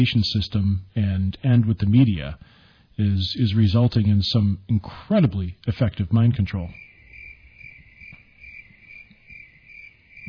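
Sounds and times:
speech: 0.0 - 6.9
crickets chirping: 6.6 - 10.2.

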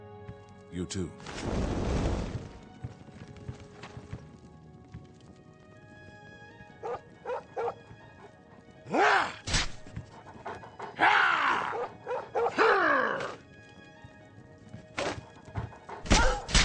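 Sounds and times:
speech: 0.7 - 1.9
pet dogs panting: 6.8 - 8.8, 9.9 - 11.0, 11.7 - 12.6, 15.1 - 16.1
pet dogs at a home in the town of Coral barking: 6.8 - 9.4, 10.0 - 13.4, 15.0 - 16.5.

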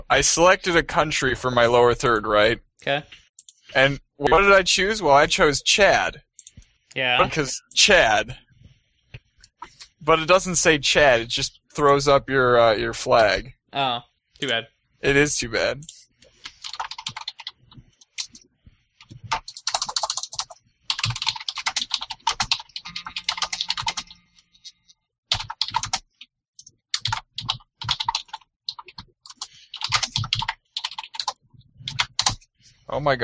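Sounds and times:
speech: 0.1 - 6.3, 6.9 - 8.4, 10.0 - 16.0, 33.0 - 33.2
typing on a computer keyboard: 15.8 - 18.4, 19.0 - 24.2, 25.3 - 32.4.

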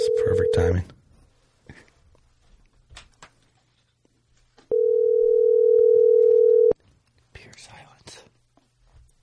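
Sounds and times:
speech: 0.6 - 1.0
telephone dial tone while a call is placed: 4.7 - 6.8.

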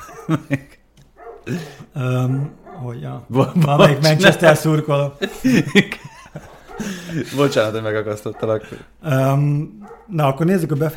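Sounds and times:
laughter: 0.0 - 0.9, 3.4 - 8.8
speech: 0.3 - 0.8, 1.5 - 6.0, 7.1 - 10.9
dog barking: 1.2 - 1.5, 2.5 - 3.0, 6.5 - 7.0, 8.3 - 8.8, 9.8 - 10.2.

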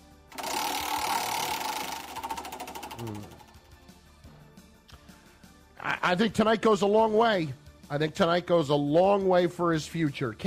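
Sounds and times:
prize wheel spinning, whirring and ticking: 0.3 - 4.0
speech: 3.0 - 3.4, 6.0 - 10.4.

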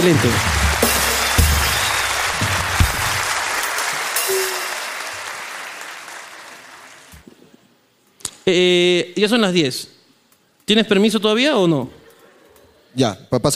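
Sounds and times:
speech: 0.0 - 0.6, 8.5 - 10.0, 10.7 - 12.0, 13.0 - 13.5
loud dense applause from a crowd: 0.0 - 7.3.

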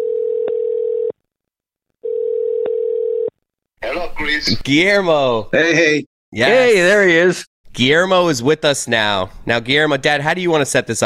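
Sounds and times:
outgoing phone call electronic ringback tone: 0.0 - 1.1, 2.0 - 3.3
speech: 3.9 - 11.0.

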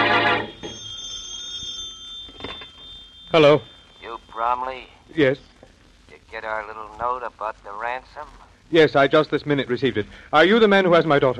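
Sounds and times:
old-fashioned telephone bell ringing: 0.0 - 4.6
speech: 3.3 - 3.7, 4.4 - 5.5, 6.3 - 11.3.

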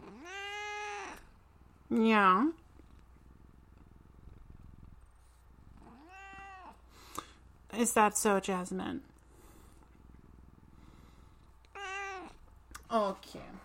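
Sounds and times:
cat meowing: 0.0 - 1.2, 5.8 - 6.8, 11.7 - 12.4
cat purring: 0.0 - 12.8
speech: 1.9 - 2.6, 7.8 - 9.1, 12.9 - 13.6.

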